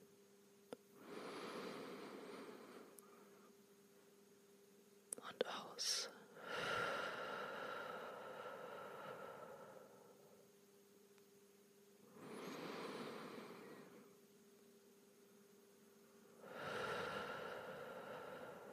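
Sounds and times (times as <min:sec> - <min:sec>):
faint steady hum: 0:00.0 - 0:18.7
deep breath in: 0:01.0 - 0:03.5, 0:06.4 - 0:10.4, 0:12.1 - 0:14.1, 0:16.4 - 0:18.7.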